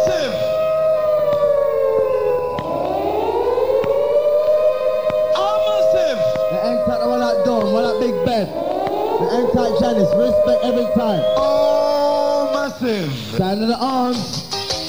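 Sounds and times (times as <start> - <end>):
siren wailing: 0.0 - 13.4
voice-like tones: 5.3 - 13.4
speech: 12.8 - 14.4.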